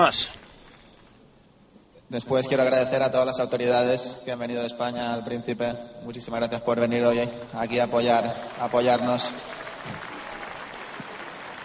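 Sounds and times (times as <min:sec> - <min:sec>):
speech: 0:00.0 - 0:00.4, 0:02.1 - 0:10.1
audience applause at a tennis tournament ceremony: 0:08.0 - 0:11.6.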